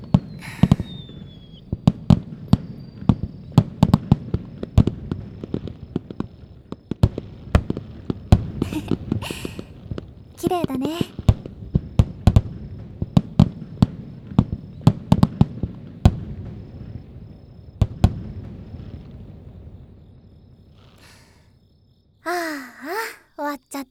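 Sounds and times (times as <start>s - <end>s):
faint rising firework whistle: 0.0s - 6.2s, 8.0s - 9.8s
fireworks finale bursting: 0.0s - 20.0s, 20.6s - 21.4s
speech: 10.4s - 11.2s.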